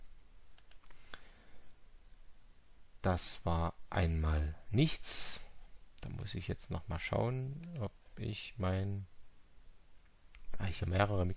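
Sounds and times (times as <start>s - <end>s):
low hiss: 0.0s - 11.3s
computer mouse clicks: 0.6s - 1.0s, 6.0s - 6.4s, 7.6s - 7.9s
speech: 3.0s - 5.4s, 6.0s - 9.1s, 10.6s - 11.3s.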